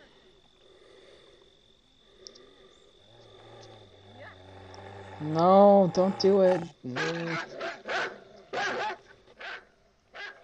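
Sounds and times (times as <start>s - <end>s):
speech: 5.2s - 7.6s
dog barking: 7.0s - 10.4s.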